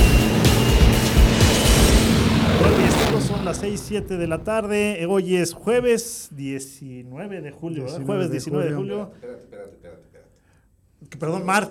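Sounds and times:
aircraft engine roaring during the takeoff roll: 0.0s - 5.9s
speech: 3.6s - 10.1s, 11.0s - 11.6s.

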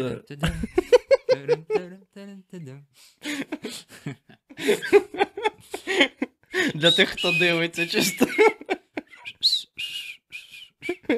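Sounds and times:
speech: 0.0s - 5.2s, 6.8s - 8.8s
laughter: 0.4s - 2.0s, 3.2s - 9.3s, 10.8s - 11.1s
person trying to whistle through lips: 6.9s - 7.7s, 9.1s - 11.1s.

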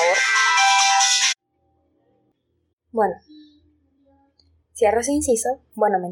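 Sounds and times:
phone ringtone of an incoming late-night call: 0.0s - 1.4s
speech: 3.0s - 3.3s, 4.8s - 6.0s.

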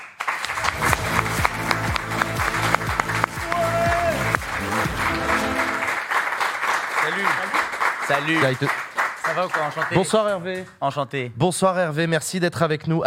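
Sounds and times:
large audience applauding: 0.0s - 10.4s
music playing: 0.5s - 6.2s
faint voices and whoops: 3.4s - 4.4s
speech: 8.1s - 13.0s.

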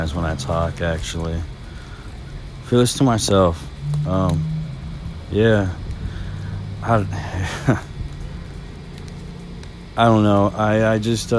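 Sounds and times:
speech: 0.0s - 1.6s, 2.7s - 4.5s, 5.3s - 5.8s, 6.8s - 7.9s, 10.0s - 11.3s
low rumble: 0.0s - 11.3s
rain falling: 0.0s - 11.3s
laughter: 7.2s - 8.0s.

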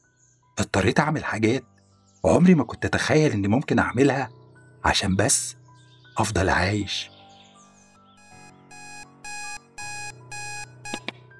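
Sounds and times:
speech: 0.6s - 5.6s, 6.2s - 7.1s
alarm clock beeping: 7.8s - 11.1s
sharp clicks cutting off the alarm clock: 10.9s - 11.2s.

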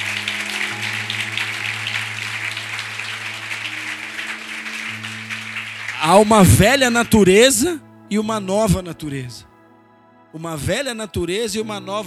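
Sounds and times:
large group clapping: 0.0s - 7.8s
sustained low musical notes: 0.0s - 12.0s
speech: 6.0s - 9.5s, 10.3s - 12.0s.

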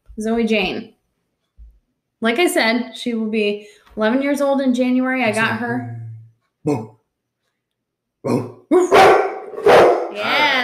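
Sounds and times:
speech: 0.2s - 0.9s, 2.2s - 6.0s, 6.6s - 7.0s, 8.2s - 9.2s
dog barking: 8.8s - 10.2s.

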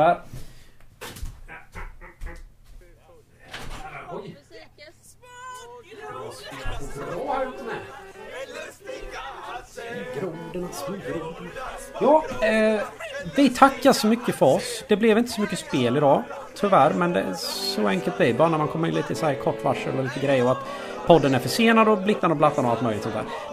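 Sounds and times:
speech: 0.0s - 0.3s, 10.2s - 23.5s
crowd of people chatting and laughing outdoors at a midsummer garden gathering: 3.5s - 23.5s.

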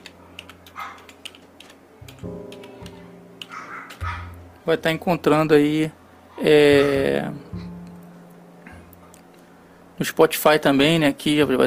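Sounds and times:
typing a search on a computer keyboard: 0.0s - 4.0s
low steady hum: 0.0s - 11.6s
speech: 2.2s - 2.6s, 4.7s - 7.6s, 10.0s - 11.6s.

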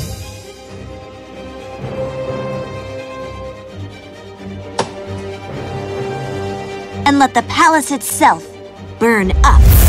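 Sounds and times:
wooden things in a palace being chopped to pieces: 4.7s - 5.0s
speech: 7.1s - 9.8s.

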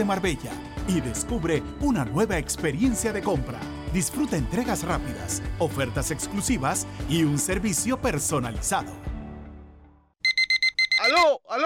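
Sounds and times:
speech: 0.0s - 9.1s, 11.1s - 11.6s
alarm clock beeping: 10.2s - 11.3s
person's drawn-out groggy voice: 11.2s - 11.6s.

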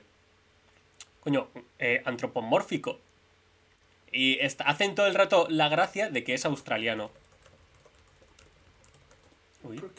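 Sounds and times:
speech: 1.2s - 3.1s, 4.1s - 7.2s
fast typing on a computer keyboard: 6.4s - 9.7s.

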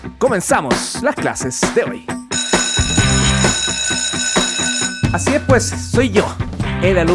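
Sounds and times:
speech: 0.2s - 2.2s, 5.1s - 7.1s
electric bell ringing for the start of class: 2.3s - 6.0s.

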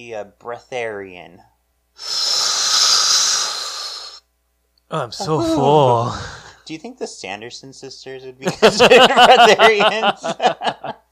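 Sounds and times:
speech: 0.0s - 2.2s, 4.9s - 11.0s
deep breath drawn in through the mouth: 2.0s - 4.2s
laughter: 8.5s - 11.0s.

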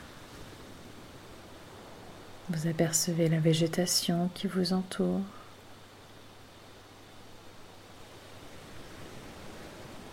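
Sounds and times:
gentle waves washing onto a sandbar: 0.0s - 3.0s, 5.5s - 10.1s
speech: 2.5s - 5.4s.

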